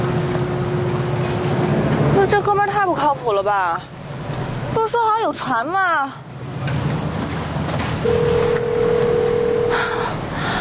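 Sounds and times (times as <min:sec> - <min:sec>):
constant rumbling noise: 0:00.0 - 0:10.5
speech: 0:03.1 - 0:04.0, 0:04.9 - 0:06.2, 0:08.0 - 0:08.3
unanswered phone call ringback tone: 0:08.0 - 0:10.0.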